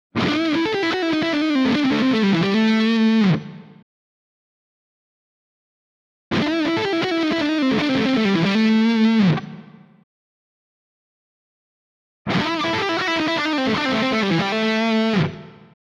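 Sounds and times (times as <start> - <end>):
chrome humbucker electric guitar lead: 0.2 - 3.8, 6.3 - 9.9, 12.3 - 15.7.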